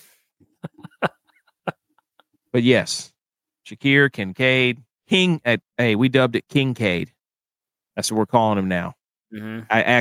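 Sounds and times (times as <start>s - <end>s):
laughter: 0.6s - 1.9s
speech: 2.6s - 3.1s, 3.7s - 7.2s, 8.0s - 10.0s
person clearing throat: 9.4s - 9.7s.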